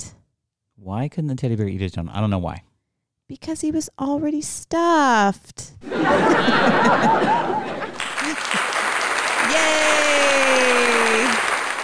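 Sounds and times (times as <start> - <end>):
speech: 0.8 - 2.7, 3.3 - 7.6
laughter: 5.8 - 11.8
canned round of applause sound effect: 6.8 - 11.8.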